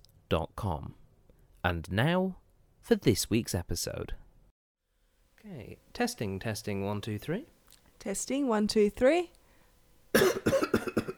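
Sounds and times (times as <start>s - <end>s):
speech: 0.3s - 1.0s, 1.6s - 4.2s, 5.4s - 9.4s, 10.1s - 11.0s
throat clearing: 10.2s - 11.1s.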